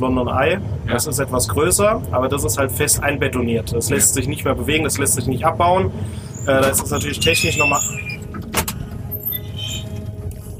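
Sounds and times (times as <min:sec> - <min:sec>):
speech: 0:00.0 - 0:08.0
steady low mechanical rumble of a Ferris wheel: 0:00.0 - 0:10.5
Ferris wheel gondola doors opening with a metallic clack: 0:06.5 - 0:10.2.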